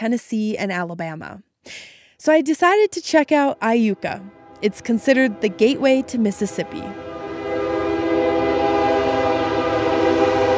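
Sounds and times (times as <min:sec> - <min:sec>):
speech: 0:00.0 - 0:07.1
low rumble of rail noise from a passing train: 0:02.4 - 0:10.5
train horn blast in Iuka Mississippi: 0:03.1 - 0:10.5.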